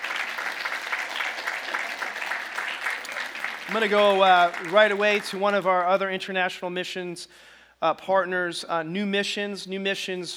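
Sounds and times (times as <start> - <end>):
audience applause: 0.0 - 5.9
speech: 3.7 - 10.3.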